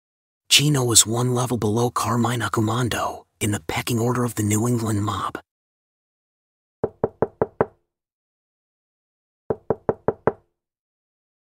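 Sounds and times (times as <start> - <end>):
speech: 0.5 - 5.5
sharp knocks on a door: 6.8 - 7.8, 9.5 - 10.5.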